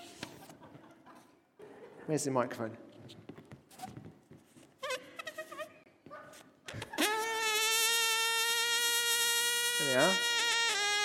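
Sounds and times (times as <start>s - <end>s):
speech: 2.1s - 3.2s
balloon deflating with squealing hiss: 6.7s - 11.0s.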